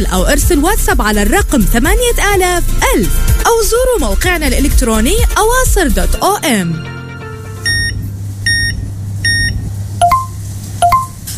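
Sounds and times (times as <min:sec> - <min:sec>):
speech: 0:00.0 - 0:06.9
card payment terminal beeps: 0:07.6 - 0:11.2.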